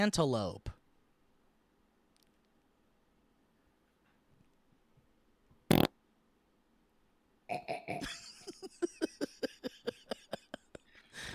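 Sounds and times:
speech: 0.0 - 0.7
cartoonish fart sound effect from a fart button: 5.7 - 6.0
laughter: 7.9 - 10.8.

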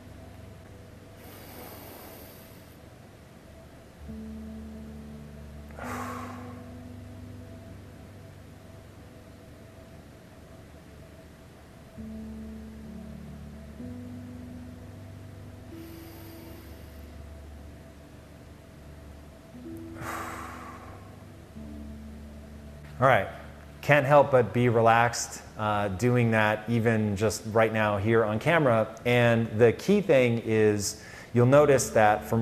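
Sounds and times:
constant hiss: 0.0 - 32.3
steady low droning hum: 0.0 - 32.3
slow breathing in through the nose and out through the mouth: 1.2 - 2.9, 5.7 - 7.0, 15.7 - 17.4, 19.7 - 21.2, 31.0 - 31.4
speech: 23.0 - 32.3.

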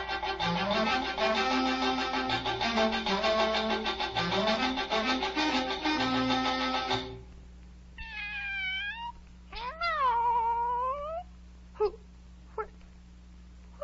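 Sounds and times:
steady low hum: 0.0 - 13.8
cat meowing: 8.0 - 11.3.

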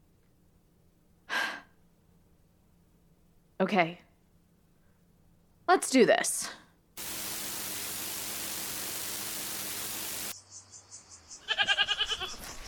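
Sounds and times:
speech: 3.6 - 4.0, 5.7 - 6.6
static hiss: 7.0 - 10.4
goats bleating: 11.4 - 12.4.

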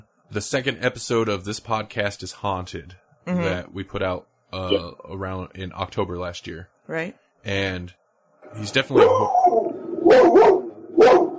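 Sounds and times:
speech: 0.3 - 9.6
laughter: 0.4 - 6.6, 7.5 - 7.9, 8.6 - 9.3
person imitating a dog barking: 3.4 - 3.8, 8.7 - 9.3, 10.1 - 11.3.

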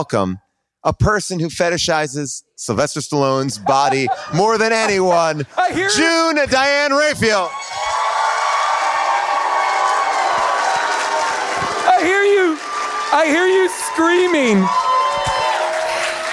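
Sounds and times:
speech: 0.0 - 7.8, 13.1 - 15.3
laughter: 3.4 - 6.4
live crowd roaring: 7.0 - 16.3
loud rising-and-falling screams and whoops: 7.3 - 16.3.

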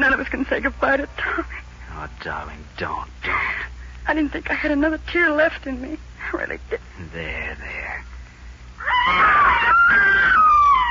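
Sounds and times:
speech: 0.0 - 8.0, 9.0 - 10.5
boy screaming in a haymow: 8.8 - 10.9.

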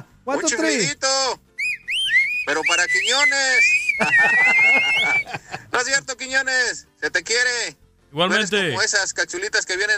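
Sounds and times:
speech: 0.3 - 1.5, 2.5 - 9.9
short whistles: 1.6 - 5.2
laughter: 3.9 - 5.7.

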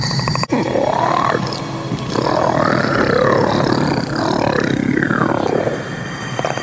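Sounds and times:
monster roar from a film: 0.5 - 5.9.

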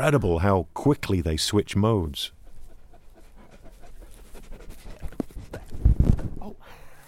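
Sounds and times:
speech: 0.0 - 2.4
long white-coated sheep guard dog panting heavily: 2.1 - 6.3.

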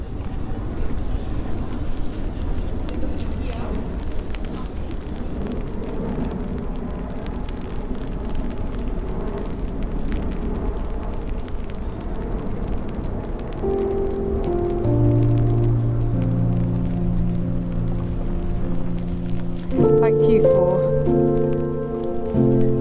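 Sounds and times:
heavy rain falling outdoors: 0.0 - 22.8
gentle melodic tune: 13.6 - 22.8.

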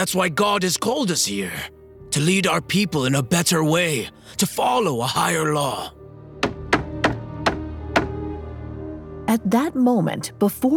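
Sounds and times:
speech: 0.0 - 6.0, 9.3 - 10.7
sharp knocks on a wooden door: 6.4 - 8.2.

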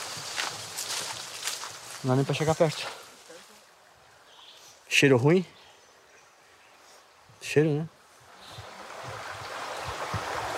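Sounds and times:
speech: 2.0 - 3.0, 5.0 - 5.6, 7.5 - 8.0
flowing water rushing beside an abandoned coal mine: 8.0 - 10.5.

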